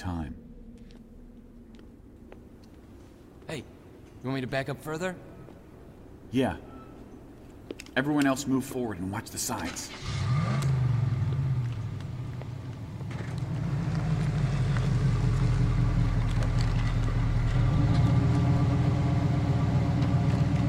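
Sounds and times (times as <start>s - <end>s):
speech: 3.5s - 5.3s, 6.3s - 6.7s, 8.0s - 10.2s
vehicle engine idling: 10.3s - 20.6s.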